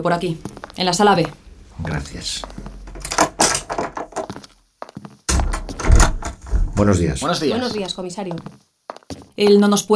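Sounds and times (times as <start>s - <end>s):
speech: 0.0s - 2.6s, 6.8s - 8.6s, 9.4s - 9.9s
clattering knocks and thumps of doors opening: 2.8s - 4.4s, 5.3s - 7.0s
loud sustained rumbling slide of doors with heavy low thuds: 5.4s - 6.9s.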